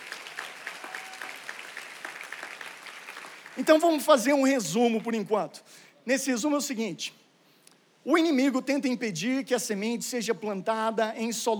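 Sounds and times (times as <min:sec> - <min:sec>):
congregation applauding: 0:00.0 - 0:05.2
speech: 0:03.6 - 0:07.2, 0:08.0 - 0:11.5.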